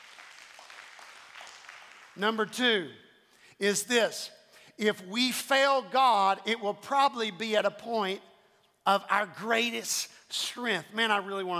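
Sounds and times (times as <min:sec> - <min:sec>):
crowd applauding: 0:00.0 - 0:02.2
speech: 0:02.2 - 0:03.0, 0:03.6 - 0:11.5.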